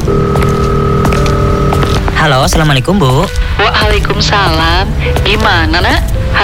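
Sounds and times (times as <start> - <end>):
steady telephone ringing tone: 0.1 - 2.0
speech: 2.3 - 6.4.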